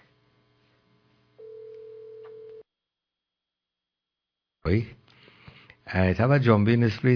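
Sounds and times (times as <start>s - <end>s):
faint hum: 0.0s - 2.7s, 4.7s - 7.1s
electronic phone ring: 1.4s - 2.6s
speech: 4.7s - 5.0s, 5.9s - 7.1s.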